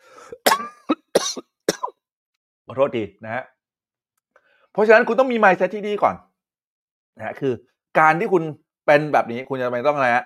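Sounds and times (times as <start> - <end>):
person coughing forcefully: 0.3 - 1.9
speech: 2.7 - 3.6, 4.8 - 6.3, 7.2 - 10.2.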